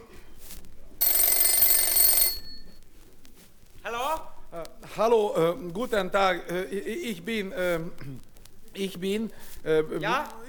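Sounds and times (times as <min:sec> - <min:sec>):
telephone bell ringing: 0:01.0 - 0:02.8
speech: 0:05.0 - 0:10.4.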